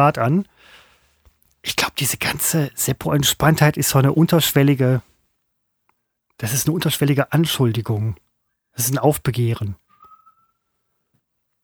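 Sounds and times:
speech: 0:00.0 - 0:00.8, 0:01.6 - 0:05.1, 0:06.4 - 0:08.2, 0:08.8 - 0:09.8
person whistling a short sustained note: 0:09.9 - 0:10.7.

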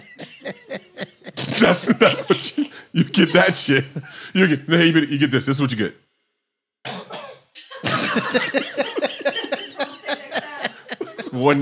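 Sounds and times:
laughter: 0:00.0 - 0:05.2, 0:07.6 - 0:11.6
person in a comedy show audience coughing harshly: 0:01.3 - 0:03.8, 0:06.9 - 0:08.6
speech: 0:01.6 - 0:06.0, 0:11.3 - 0:11.6.

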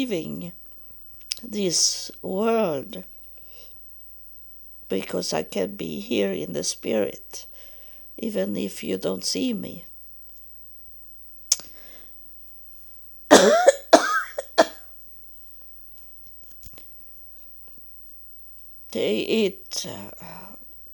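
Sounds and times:
speech: 0:00.0 - 0:00.6, 0:01.4 - 0:03.1, 0:04.9 - 0:07.5, 0:08.2 - 0:09.9, 0:19.0 - 0:20.4
coughing and rough hacking: 0:13.3 - 0:14.8
throat clearing: 0:13.3 - 0:14.8.

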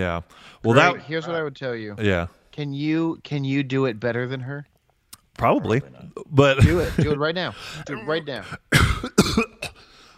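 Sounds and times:
speech: 0:00.0 - 0:04.7, 0:05.4 - 0:09.8
person coughing with harsh bursts and a rasping hack: 0:07.8 - 0:09.8.

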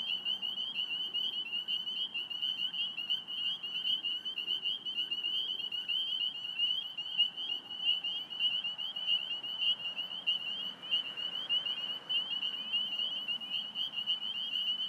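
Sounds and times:
spring peeper chorus in recently mowed cattail and grass habitat: 0:00.0 - 0:14.8
soft traffic noise from Fort Hunt Road: 0:06.9 - 0:14.8.

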